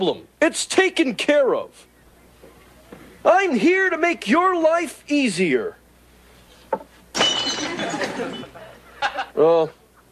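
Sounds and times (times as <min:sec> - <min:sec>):
speech: 0:00.0 - 0:01.9, 0:03.2 - 0:05.8, 0:09.1 - 0:09.8
glass shattering: 0:07.1 - 0:08.5
glass shards tinkling and scattering: 0:07.1 - 0:08.6.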